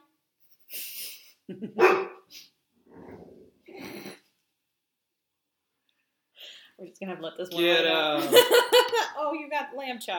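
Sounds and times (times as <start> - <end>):
speech: 1.5 - 2.2, 6.9 - 10.1
anxious dog barking: 1.8 - 2.2.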